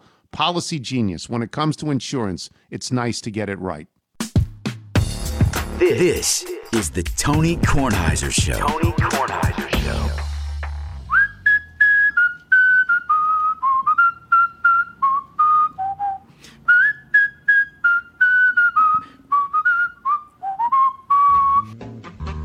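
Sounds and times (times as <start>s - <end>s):
speech: 0.4s - 4.0s, 5.8s - 10.3s
breath-whistled theme tune by a world champion whistler: 11.0s - 22.4s.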